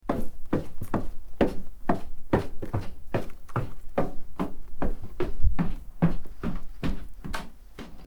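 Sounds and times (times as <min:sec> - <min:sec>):
footsteps on stairs: 0:00.0 - 0:08.0.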